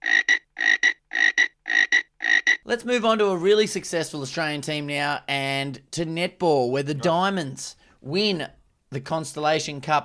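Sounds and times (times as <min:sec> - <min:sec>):
frog croaking: 0:00.0 - 0:02.7
speech: 0:02.7 - 0:10.0.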